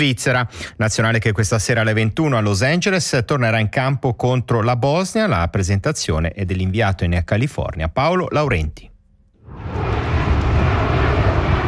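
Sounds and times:
speech: 0.0 - 8.9
airplane engine roar landing at the Los Angeles airport over a stadium: 9.4 - 11.6.

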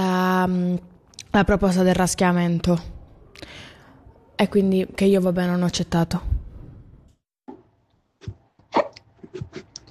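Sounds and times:
speech: 0.4 - 3.7, 4.4 - 6.4
short sharp hiccups close to the mic: 8.2 - 9.9.

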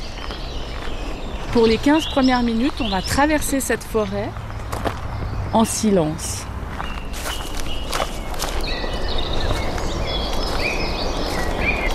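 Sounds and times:
people walking through leaves in woodland: 0.0 - 3.0, 6.7 - 11.9
speech: 1.5 - 4.4, 5.5 - 6.5.

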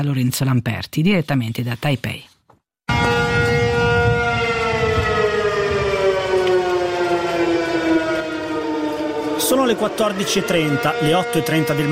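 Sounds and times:
speech: 0.0 - 2.3, 9.5 - 11.8
air-raid siren wailing over a city: 2.9 - 11.8.

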